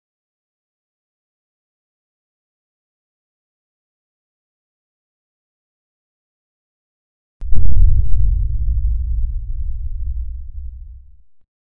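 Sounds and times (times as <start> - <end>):
giant floor panel arriving, rotating and locking with low-frequency effects: 7.4 - 11.4.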